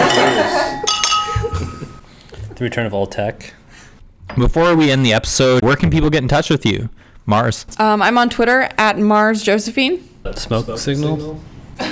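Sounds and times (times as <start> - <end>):
glasses clinking in a toast: 0.0 - 2.0
speech: 2.6 - 3.6, 4.3 - 11.9.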